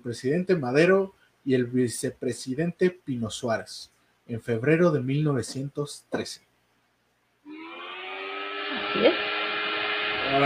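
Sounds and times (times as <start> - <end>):
speech: 0.0 - 6.5, 8.9 - 9.3
electric fan whirring with motor hum and faint high whine: 7.5 - 10.4.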